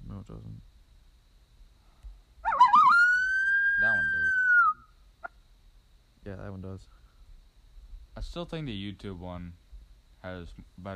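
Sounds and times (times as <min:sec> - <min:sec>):
speech: 0:00.2 - 0:00.8, 0:06.3 - 0:07.0, 0:08.2 - 0:09.6, 0:10.2 - 0:10.9
coyote howling: 0:02.4 - 0:05.4.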